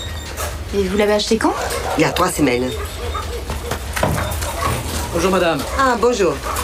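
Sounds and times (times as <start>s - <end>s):
dog whimpering with high whines: 0.0s - 6.6s
steady low hum: 0.0s - 6.6s
speech: 0.7s - 2.9s, 5.2s - 6.6s
dog barking: 1.4s - 6.6s.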